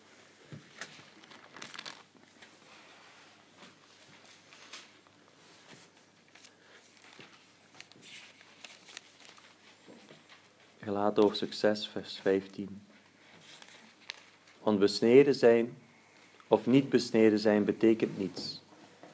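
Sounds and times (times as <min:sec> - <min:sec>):
book pages being turned back: 0:00.5 - 0:02.6, 0:03.6 - 0:10.6, 0:13.0 - 0:14.6
speech: 0:10.9 - 0:12.9, 0:14.7 - 0:15.8, 0:16.5 - 0:18.6.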